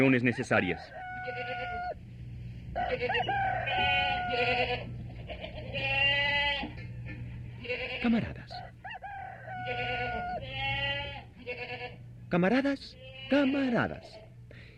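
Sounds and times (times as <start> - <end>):
speech: 0.0 - 1.7, 2.8 - 5.0, 7.7 - 8.4, 12.3 - 14.2
farm animals murmuring: 0.0 - 14.7
goats and sheep bleating in long wavering calls: 0.6 - 2.0, 2.8 - 6.9, 7.5 - 8.6, 9.4 - 12.0, 12.9 - 14.3.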